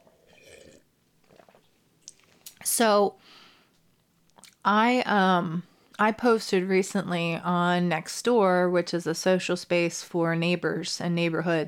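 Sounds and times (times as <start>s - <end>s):
person sipping a drink: 0.0s - 2.6s
slurps and swallows: 0.0s - 2.6s
speech: 2.8s - 3.4s, 4.6s - 11.6s.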